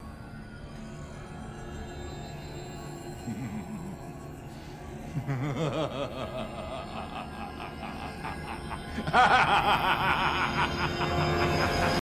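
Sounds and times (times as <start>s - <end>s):
evil laugh: 3.2s - 4.1s, 5.1s - 11.9s.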